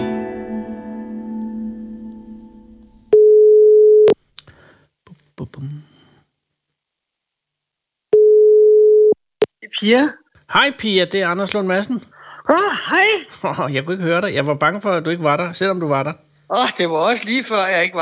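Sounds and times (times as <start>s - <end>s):
Danish ringback tone of an outgoing phone call: 3.1s - 4.2s, 8.2s - 9.2s
speech: 9.8s - 18.0s.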